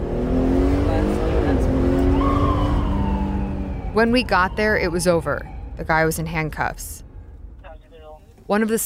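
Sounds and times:
police car engine: 0.0 - 8.8
road noise: 0.0 - 8.8
police car siren wailing: 1.8 - 7.0
speech: 4.0 - 7.1, 8.5 - 8.8.

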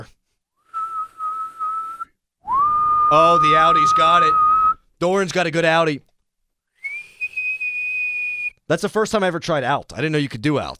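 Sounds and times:
person whistling a single high note: 0.6 - 4.8, 6.8 - 8.6
speech: 3.1 - 4.4, 5.0 - 6.1, 8.7 - 10.7.

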